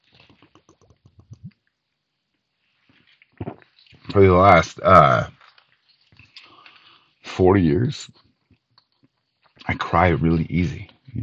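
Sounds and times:
person gulping and swallowing water: 0.1s - 1.6s
speech: 4.2s - 5.4s, 7.4s - 8.2s, 9.9s - 11.2s
breathy exhale: 6.4s - 7.2s.

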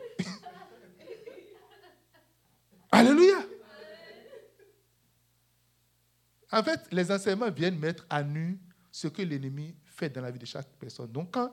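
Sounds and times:
laughter: 0.0s - 2.4s, 3.0s - 4.8s
faint steady hum: 0.0s - 11.5s
person coughing: 0.2s - 0.5s
speech: 6.5s - 11.5s.

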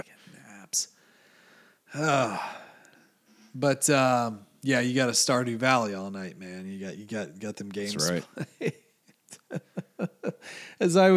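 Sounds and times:
quiet breathing: 0.0s - 3.6s, 10.4s - 10.8s
speech: 0.7s - 1.0s, 1.9s - 2.6s, 3.6s - 8.8s, 10.4s - 11.1s
person yawning: 2.0s - 2.7s, 7.9s - 8.2s
laughter: 7.7s - 10.5s.

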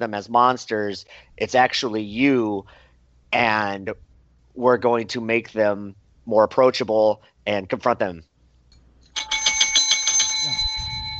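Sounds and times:
speech: 0.0s - 8.3s
bright bell ringing rapidly: 9.1s - 11.1s.

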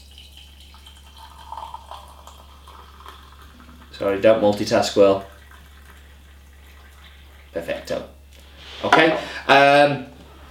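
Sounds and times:
brewed Catura coffee pouring into a cup: 0.0s - 8.0s
low electrical hum: 0.0s - 10.4s
speech: 4.0s - 5.3s.

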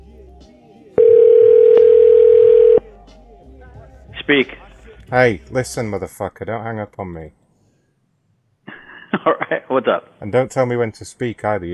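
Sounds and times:
steady telephone tone while a call is being placed: 1.0s - 2.8s
speech: 4.3s - 7.4s, 9.2s - 11.7s.

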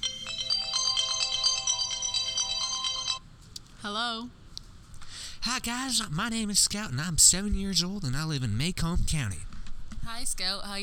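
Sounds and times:
electronic telephone ringtone for an incoming call-in: 0.0s - 3.2s
speech: 3.8s - 4.4s, 5.4s - 9.5s, 10.1s - 10.8s.

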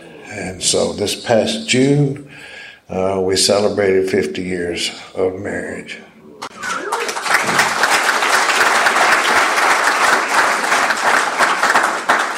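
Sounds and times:
speech: 0.3s - 6.1s
audience applause: 6.5s - 12.3s.

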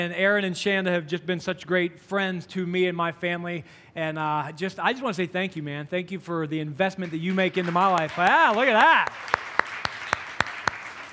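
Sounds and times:
speech: 0.0s - 9.4s
lone pair of hands clapping: 7.0s - 11.1s.

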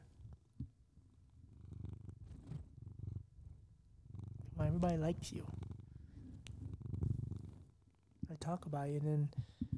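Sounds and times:
cat purring: 0.0s - 8.7s
speech: 4.6s - 5.7s, 8.5s - 9.5s.

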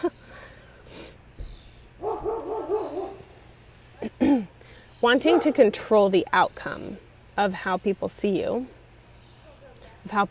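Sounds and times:
several dogs barking and yapping: 2.0s - 3.4s, 5.2s - 5.8s
speech: 5.0s - 8.8s, 10.0s - 10.2s.

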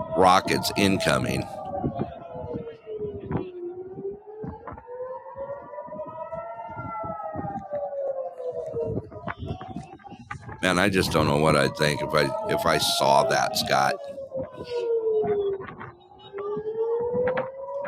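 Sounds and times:
voices: 0.0s - 1.6s, 10.6s - 14.0s
air raid sirens wailing: 0.0s - 17.8s
speech: 0.2s - 1.6s, 10.6s - 14.8s.

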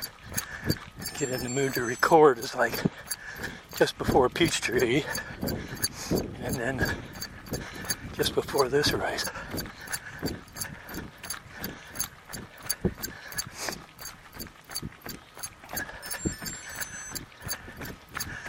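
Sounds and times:
rhythmic footsteps pounding while running: 0.0s - 18.4s
heart rate monitor alert beeping in short electronic tones: 1.0s - 2.6s, 15.8s - 17.6s
speech: 1.2s - 9.8s.

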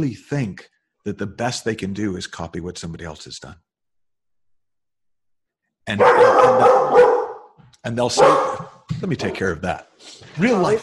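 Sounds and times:
speech: 0.0s - 3.7s, 5.9s - 7.2s, 7.8s - 10.8s
dog barking: 5.9s - 9.4s.

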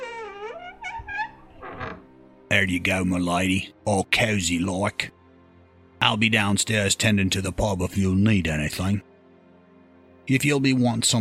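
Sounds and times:
voice imitating a door creaking as it is stomped open: 0.0s - 2.1s
speech: 2.5s - 5.2s, 6.0s - 9.1s, 10.3s - 11.1s.

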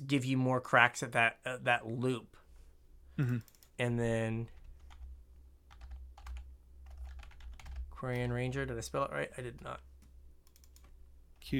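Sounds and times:
speech: 0.1s - 2.4s, 3.2s - 4.6s, 8.0s - 9.9s
typing on a computer keyboard: 4.5s - 5.1s, 5.7s - 8.4s, 9.6s - 11.5s.

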